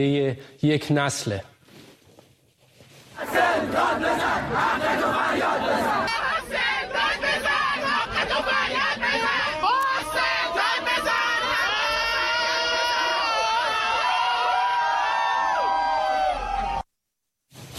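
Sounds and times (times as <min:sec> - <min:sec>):
speech: 0:00.0 - 0:01.5
crowd of protesting school students shouting and chanting in the street in Iran: 0:03.2 - 0:16.8.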